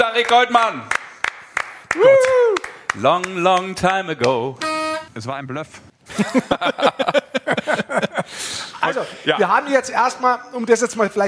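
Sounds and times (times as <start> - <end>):
sharp evenly spaced handclaps: 0.0 - 4.7
speech: 0.2 - 1.0, 2.0 - 11.2
laughter: 6.1 - 9.3.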